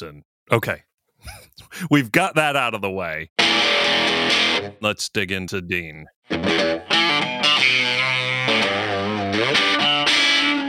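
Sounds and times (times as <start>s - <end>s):
speech: 0.0s - 7.0s
electric guitar played through a locally built distortion pedal: 3.4s - 4.8s, 6.3s - 10.6s.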